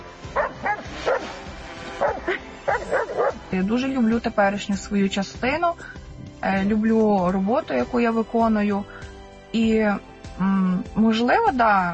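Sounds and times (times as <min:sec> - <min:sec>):
dog barking in sharp yappy woofs: 0:00.4 - 0:01.3, 0:02.0 - 0:03.4
speech: 0:03.5 - 0:11.9.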